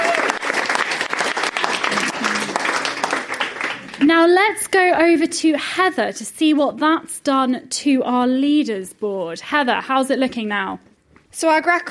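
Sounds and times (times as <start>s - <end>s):
crowd clapping: 0.0s - 4.2s
speech: 4.1s - 11.8s.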